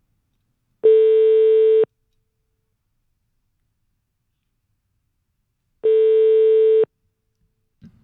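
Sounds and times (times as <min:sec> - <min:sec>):
telephone ringback tone while placing a call: 0:00.8 - 0:01.9, 0:05.8 - 0:06.9.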